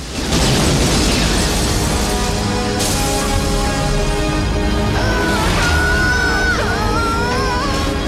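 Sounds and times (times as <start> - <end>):
explosion striking an apartment building in a war zone: 0.0 - 4.7
crackling debris: 0.0 - 7.0.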